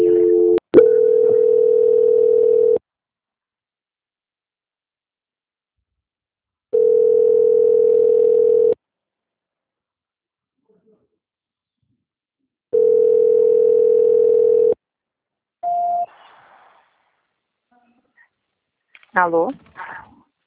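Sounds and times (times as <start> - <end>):
telephone tones during a call transfer: 0.0 - 2.8, 6.8 - 8.8, 12.8 - 14.8
speech: 19.2 - 19.7.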